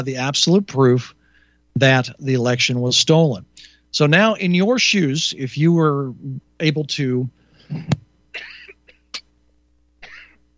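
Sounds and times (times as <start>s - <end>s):
speech: 0.0s - 1.2s, 1.8s - 8.5s
person coughing: 7.6s - 9.2s, 10.0s - 10.4s
short breathy throat clearing: 7.6s - 9.2s, 10.0s - 10.4s.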